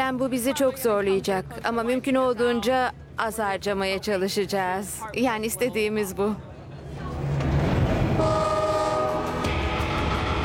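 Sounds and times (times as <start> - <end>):
northbound freight train hauling oil pipeline pipes rumbling: 0.0 - 10.4
speech: 0.1 - 7.0
freight train rail clatter: 7.0 - 10.4
freight train horn: 8.2 - 10.4.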